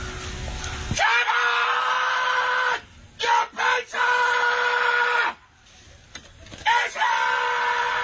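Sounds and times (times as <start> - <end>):
middle-aged man screaming at a front door while delivering a pizza: 1.0 - 5.4, 6.6 - 8.0.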